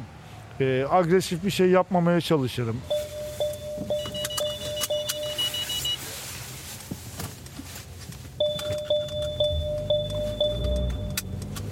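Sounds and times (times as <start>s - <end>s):
speech: 0.6s - 3.0s
low constant car engine rumble: 2.7s - 11.6s
car reversing warning beeper in a car park: 2.9s - 6.1s, 8.4s - 11.6s.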